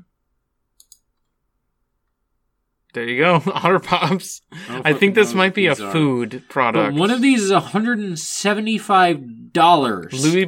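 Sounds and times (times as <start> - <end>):
computer mouse clicks: 0.8 - 1.4
speech: 3.0 - 10.4
laughter: 3.2 - 7.8.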